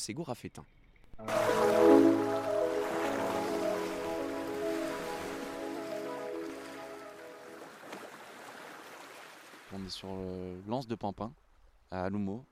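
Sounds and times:
speech: 0.0s - 2.2s, 9.7s - 12.4s
waves lapping on a beach at a cove facing a bridge: 1.2s - 10.1s.

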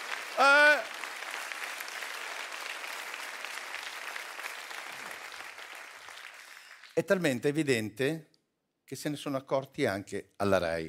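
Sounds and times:
audience applause: 0.0s - 7.0s
speech: 0.4s - 0.6s, 7.0s - 8.3s, 8.9s - 10.8s.

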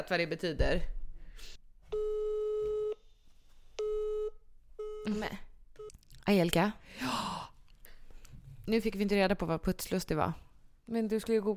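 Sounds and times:
speech: 0.0s - 1.6s, 5.0s - 5.5s, 6.3s - 7.3s, 8.7s - 11.5s
telephone busy signal when calling: 2.0s - 3.0s.

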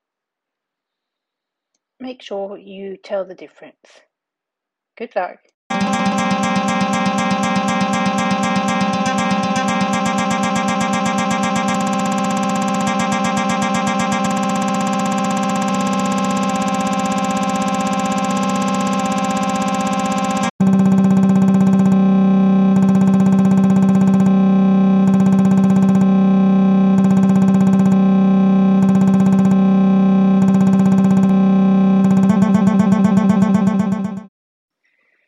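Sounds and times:
speech: 2.0s - 4.1s, 5.0s - 5.5s
loud buzzy synthetic tone run through distortion effects: 5.7s - 26.2s, 26.8s - 34.3s.

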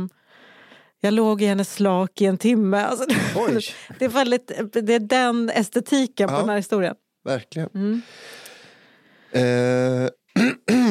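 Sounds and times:
speech: 0.0s - 0.2s, 1.0s - 8.4s, 9.3s - 10.9s
loud throat-clearing cough: 10.4s - 10.9s.

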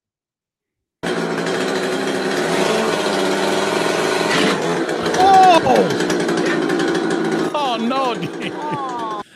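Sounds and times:
chainsaw running and revving: 1.0s - 9.3s
laughter: 5.0s - 6.7s, 7.4s - 9.3s
faint voices: 7.4s - 9.2s.

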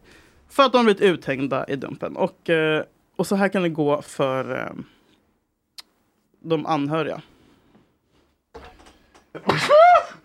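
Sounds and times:
speech: 0.6s - 5.0s, 6.4s - 7.3s
person sneezing: 9.4s - 10.2s.

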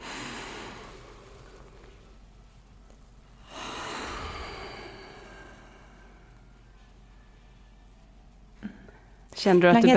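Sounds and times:
slow deep breath drawn in: 0.0s - 2.2s, 3.4s - 6.9s
speech: 9.4s - 9.9s.

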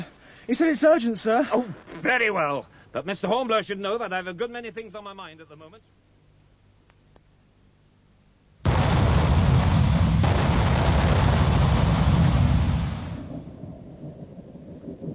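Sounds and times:
speech: 0.5s - 6.0s
ship's cannons firing: 8.7s - 13.7s.

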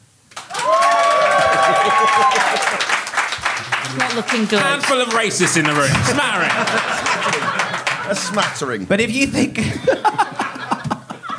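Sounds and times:
live studio audience applauding: 0.3s - 8.8s
laughter: 0.6s - 11.3s
speech: 4.0s - 10.2s.

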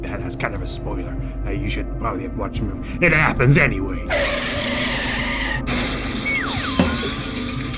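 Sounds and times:
speech: 0.0s - 4.8s, 5.7s - 6.6s
car tires screeching in a long skid: 4.1s - 7.7s.

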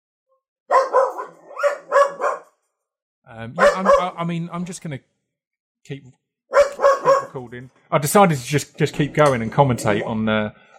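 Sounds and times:
dog barking: 0.7s - 2.6s, 3.6s - 4.2s, 6.5s - 7.4s
speech: 3.3s - 5.1s, 5.8s - 6.2s, 7.3s - 10.7s.

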